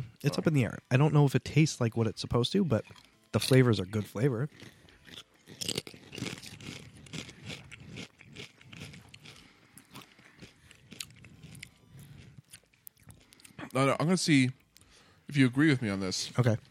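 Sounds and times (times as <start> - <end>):
speech: 0.2 - 5.8, 13.8 - 14.6, 15.3 - 16.6
crunching bites of a ranch-flavoured chip: 4.4 - 13.7.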